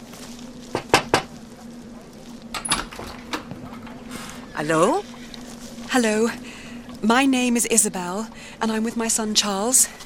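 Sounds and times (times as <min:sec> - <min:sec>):
steady low electrical hum: 0:00.0 - 0:10.0
knocking on a stranger's door: 0:00.8 - 0:01.3
speech: 0:04.6 - 0:05.1, 0:05.9 - 0:10.0.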